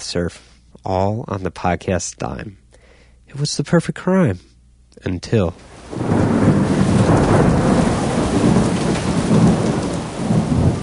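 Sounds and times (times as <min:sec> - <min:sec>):
speech: 0:00.1 - 0:02.6, 0:03.3 - 0:06.6
low thunder rolling and rumbling near Cape Canaveral: 0:05.5 - 0:10.8
heavy rain pouring down during a thunderstorm near Cape Canaveral: 0:05.6 - 0:10.8.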